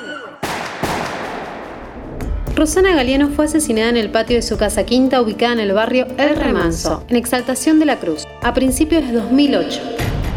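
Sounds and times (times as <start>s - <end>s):
gunshots fired at a woman from behind in the yard of a country house: 0.4s - 2.2s
speech: 2.6s - 10.1s.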